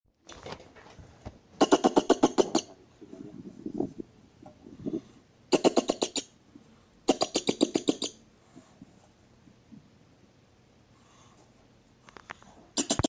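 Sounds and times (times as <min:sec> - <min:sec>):
European mink call: 0:01.6 - 0:02.8, 0:05.0 - 0:06.4, 0:07.1 - 0:08.2, 0:12.8 - 0:13.0.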